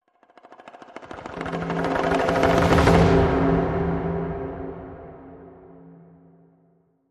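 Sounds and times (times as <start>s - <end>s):
hushed ethnic percussion: 0.3s - 5.4s.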